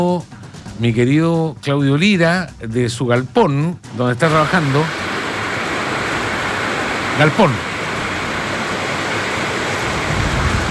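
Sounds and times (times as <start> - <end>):
speech: 0.0 - 5.0, 7.2 - 7.7
heavy rain drumming on a metal roof: 4.2 - 10.6.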